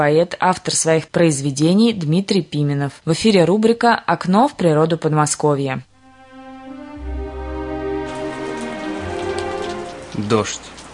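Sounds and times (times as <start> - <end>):
speech: 0.0 - 5.9, 10.2 - 10.8
cold fine rain falling on water covered with green algae: 7.0 - 10.9.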